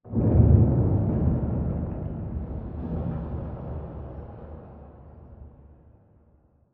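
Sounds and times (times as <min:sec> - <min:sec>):
distant exterior explosion rumble tail: 0:00.1 - 0:05.6.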